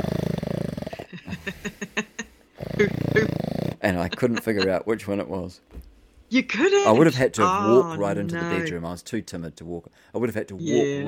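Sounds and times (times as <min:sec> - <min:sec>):
person imitating loud snoring of sleeping grandparents: 0:00.0 - 0:01.5, 0:02.6 - 0:04.3
laughter: 0:01.1 - 0:04.9, 0:06.9 - 0:08.7
speech: 0:01.5 - 0:01.8, 0:02.8 - 0:03.0, 0:03.9 - 0:11.0.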